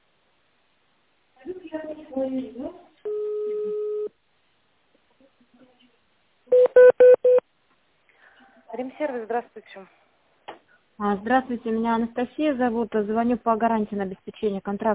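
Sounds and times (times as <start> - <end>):
speech: 2.2 - 2.9, 8.9 - 10.0, 11.0 - 14.9
long steady beep: 3.1 - 4.1, 6.5 - 7.4
touch-tone keypad tones on a call to a company's automated phone line: 6.5 - 7.4.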